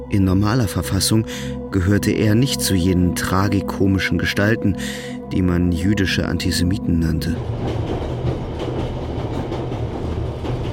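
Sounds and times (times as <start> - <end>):
speech: 0.1 - 8.0
train rumbling along the rails: 7.0 - 10.7
train wheels clicking over track joints: 7.4 - 10.7.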